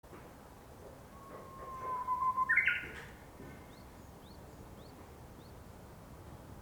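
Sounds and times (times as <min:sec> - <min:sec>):
Japanese bush warbler uguisu song: 0:01.2 - 0:06.4.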